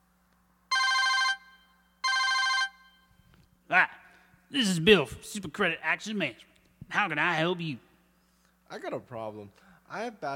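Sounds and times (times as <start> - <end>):
telephone ringing with bright trilling bursts: 0.7 - 3.1
speech: 3.7 - 7.9, 8.7 - 10.3.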